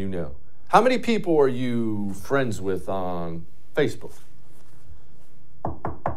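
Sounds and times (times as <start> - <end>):
speech: 0.0 - 4.3
firm knocking on a door: 5.6 - 6.1.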